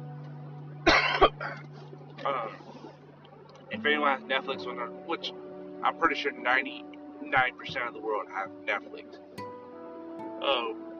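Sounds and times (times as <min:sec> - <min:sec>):
low steady hum: 0:00.0 - 0:10.1
loud cough with raspy throaty exhale: 0:00.9 - 0:01.6
speech: 0:01.5 - 0:02.8, 0:03.7 - 0:09.4, 0:10.4 - 0:10.9.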